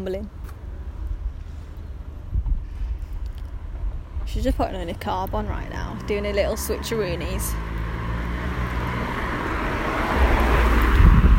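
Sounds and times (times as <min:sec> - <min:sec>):
speech: 0:00.0 - 0:00.4, 0:04.3 - 0:07.8
gusty wind noise on the microphone: 0:01.1 - 0:06.0, 0:08.8 - 0:11.3
car rushing past with a roaring whoosh: 0:03.6 - 0:11.3.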